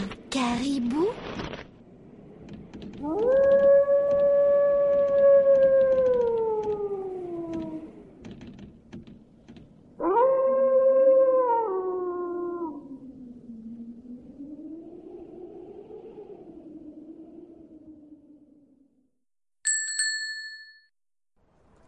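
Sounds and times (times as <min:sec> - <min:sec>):
speech: 0:00.4 - 0:01.5
faint crackling and clicking background: 0:01.1 - 0:09.9
wolf howling: 0:03.0 - 0:08.2, 0:10.0 - 0:18.8.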